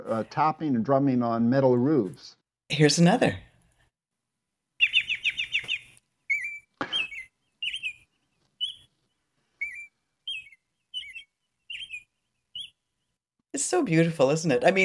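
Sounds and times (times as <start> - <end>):
speech: 0.0 - 3.5, 13.6 - 14.8
American robin singing: 4.8 - 8.9, 9.6 - 12.8.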